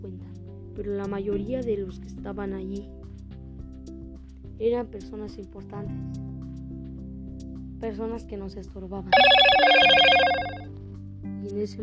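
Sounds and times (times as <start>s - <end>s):
speech: 0.8s - 3.0s, 4.6s - 6.3s, 7.8s - 10.2s, 11.4s - 11.8s
cell phone ringing: 9.2s - 10.6s.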